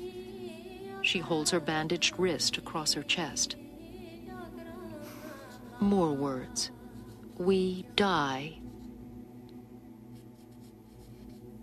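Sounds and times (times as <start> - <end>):
low hum: 0.0 - 11.6
speech: 1.1 - 3.6, 5.8 - 6.8, 7.4 - 8.7
pencil scratching on paper in a book: 5.4 - 7.9, 8.5 - 8.9, 10.2 - 11.6.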